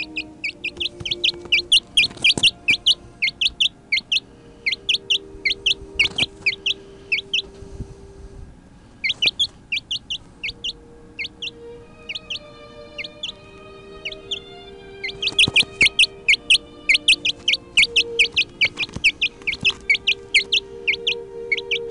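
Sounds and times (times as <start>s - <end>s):
contented chicks chirping: 0.0s - 7.9s, 9.0s - 21.9s
faint low hum: 0.0s - 21.9s.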